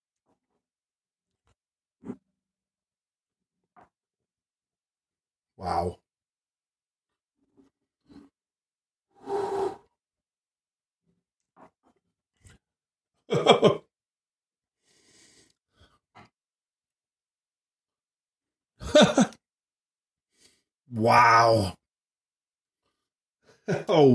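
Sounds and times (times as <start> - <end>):
speech: 5.6 - 6.0, 13.3 - 13.8, 20.9 - 21.8, 23.7 - 24.1
slurping sips of tequila: 9.2 - 9.9.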